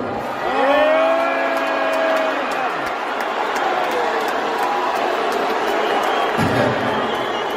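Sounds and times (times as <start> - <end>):
large audience cheering and booing: 0.0 - 7.5
sharp whistles from the crowd: 5.8 - 7.5.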